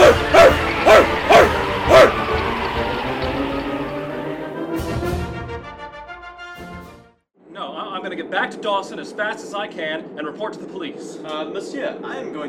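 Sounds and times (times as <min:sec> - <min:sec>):
dog barking: 0:00.0 - 0:02.2
music-like tones: 0:00.0 - 0:06.9
speech: 0:08.8 - 0:12.4.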